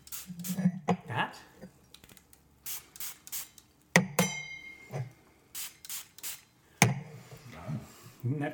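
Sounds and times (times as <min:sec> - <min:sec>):
atomizer spraying absinthe into a glass: 0:00.0 - 0:00.7, 0:02.6 - 0:03.7, 0:05.5 - 0:06.5
glass clinking and knocking while handled: 0:04.1 - 0:05.1
speech: 0:08.3 - 0:08.5.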